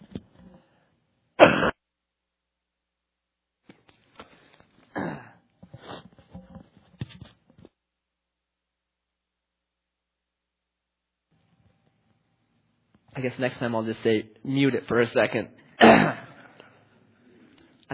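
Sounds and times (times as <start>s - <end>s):
person coughing: 1.4s - 1.8s, 4.9s - 5.4s, 15.8s - 16.7s
throat clearing: 4.9s - 5.4s, 15.8s - 16.7s
speech: 13.2s - 16.2s.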